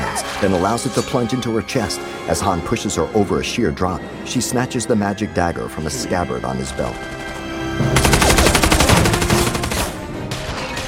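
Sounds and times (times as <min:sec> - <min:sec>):
speech: 0:00.2 - 0:07.3
rapid gunfire in a film battle: 0:07.9 - 0:10.1.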